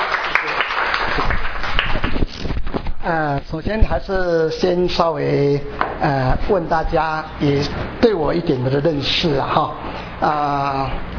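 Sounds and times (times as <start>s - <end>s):
roomful of people clapping: 0.0s - 2.6s
speech: 3.1s - 11.1s.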